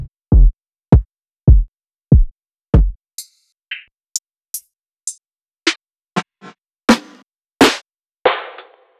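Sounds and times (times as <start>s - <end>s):
new skool drum kit: 0.3s - 3.8s, 6.2s - 8.9s.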